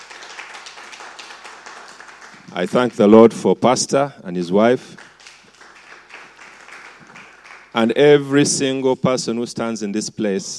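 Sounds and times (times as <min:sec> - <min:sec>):
congregation applauding during a church service: 0:00.0 - 0:03.6, 0:04.6 - 0:08.4
speech: 0:02.5 - 0:05.0, 0:07.8 - 0:10.5.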